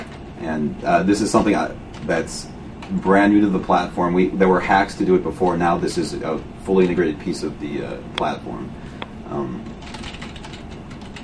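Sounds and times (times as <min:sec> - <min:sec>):
speech: 0:00.4 - 0:09.7
typing on a computer keyboard into a text box: 0:09.7 - 0:11.2.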